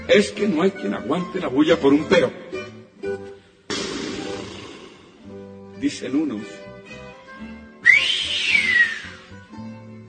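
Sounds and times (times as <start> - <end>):
speech: 0.1 - 2.5, 5.8 - 6.7
person whistling a swooping long note: 7.8 - 9.4.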